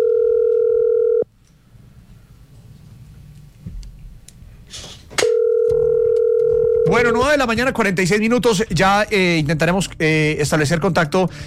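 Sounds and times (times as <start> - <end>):
steady loud telephone dial tone as a call is placed: 0.0 - 1.2, 5.3 - 6.9
low noise with a brief burst: 0.0 - 11.4
speech: 7.1 - 11.4.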